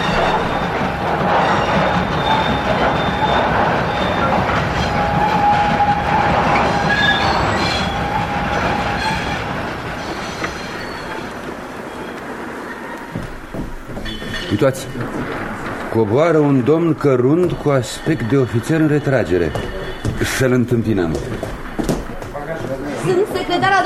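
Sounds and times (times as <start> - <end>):
thin metallic squeal of train: 0.0 - 9.4, 10.0 - 13.2, 14.0 - 15.7, 17.3 - 20.4
train arriving at station: 0.0 - 23.8
train wheels clattering over rails: 0.0 - 23.8
speech: 14.6 - 15.2, 15.9 - 21.5, 23.0 - 23.8.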